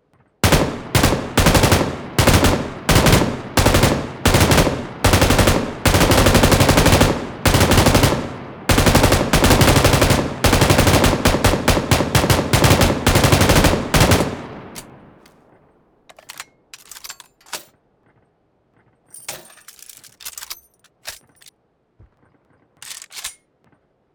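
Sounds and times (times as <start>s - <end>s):
M249 machine gun firing full auto: 0.4s - 14.9s.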